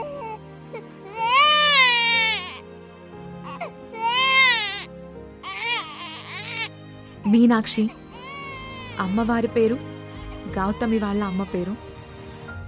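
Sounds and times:
newborn baby crying: 0:00.0 - 0:02.7, 0:03.4 - 0:06.7, 0:07.9 - 0:09.6, 0:10.2 - 0:11.7
speech: 0:07.3 - 0:08.0, 0:09.0 - 0:09.9, 0:10.5 - 0:11.9.

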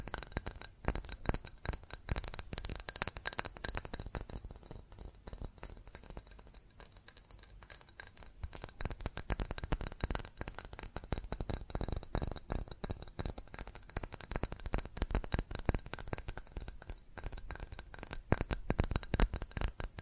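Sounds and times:
rapid tapping on glass and ceramic objects: 0:00.0 - 0:20.0.

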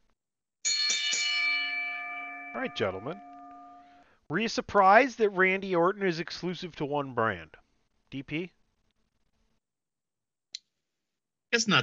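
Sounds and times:
bright metallic bell struck and ringing: 0:00.7 - 0:04.0
speech: 0:02.6 - 0:03.3, 0:04.3 - 0:08.6, 0:11.5 - 0:11.8.

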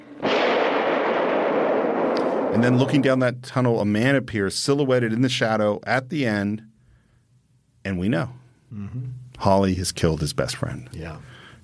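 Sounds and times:
single loud gunshot: 0:00.0 - 0:03.2
speech: 0:02.5 - 0:06.7, 0:07.8 - 0:11.4.

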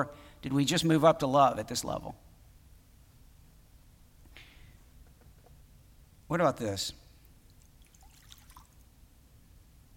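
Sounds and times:
speech: 0:00.0 - 0:02.3, 0:06.3 - 0:07.0
low hum: 0:00.0 - 0:09.9
liquid pouring: 0:07.5 - 0:08.9.

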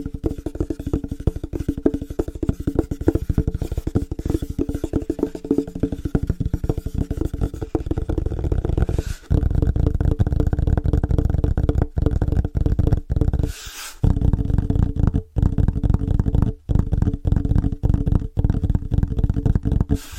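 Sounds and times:
fast rhythmic ASMR tapping on different surfaces: 0:00.0 - 0:20.1.

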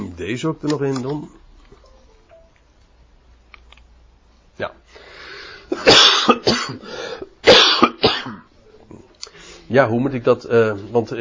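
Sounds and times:
speech: 0:00.2 - 0:01.4, 0:04.6 - 0:05.1, 0:06.7 - 0:07.0, 0:09.7 - 0:11.1
harsh hacking coughing: 0:05.7 - 0:08.5.

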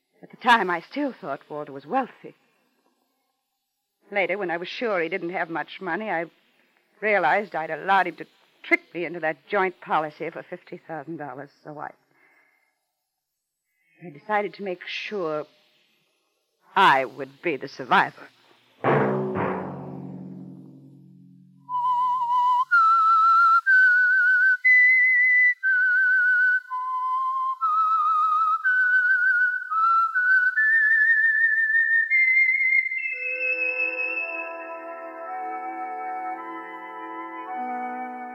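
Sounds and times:
speech: 0:00.4 - 0:02.4, 0:04.1 - 0:06.4, 0:07.0 - 0:12.0, 0:14.0 - 0:15.6, 0:16.7 - 0:18.4
whistled theme signal melody of a radio programme: 0:21.1 - 0:38.3.

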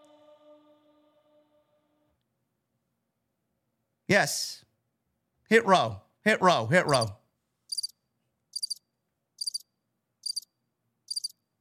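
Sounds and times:
speech: 0:04.1 - 0:04.6, 0:05.5 - 0:07.2
cricket chirping at night: 0:07.7 - 0:11.5.

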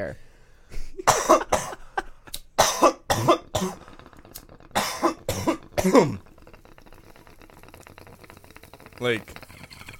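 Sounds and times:
speech: 0:00.0 - 0:00.3, 0:03.2 - 0:03.8, 0:05.8 - 0:06.3, 0:09.0 - 0:09.4
harsh coughing to clear the throat: 0:01.0 - 0:04.0, 0:04.6 - 0:06.2
gasping: 0:03.4 - 0:09.9.

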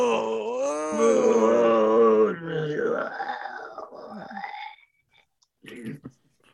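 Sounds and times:
short breathy grunt: 0:00.0 - 0:04.8
voice imitating a sick person's pained moaning: 0:00.0 - 0:04.8.

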